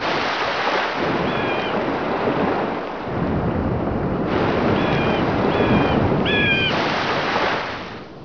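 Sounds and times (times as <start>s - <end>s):
waves: 0.0s - 8.2s.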